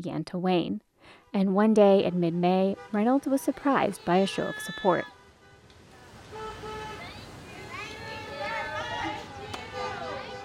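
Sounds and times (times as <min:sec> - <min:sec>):
speech: 0:00.0 - 0:05.2
steady traffic rumble of passing cars: 0:01.3 - 0:10.4
hundreds of car horns honking in a show of support: 0:02.5 - 0:10.4.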